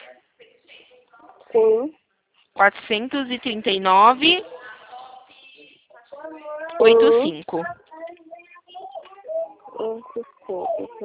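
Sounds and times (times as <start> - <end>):
speech: 1.5 - 2.0, 2.6 - 4.5, 6.8 - 7.8, 9.8 - 11.0
baby crying and fussing in high-pitched wails: 8.9 - 11.0.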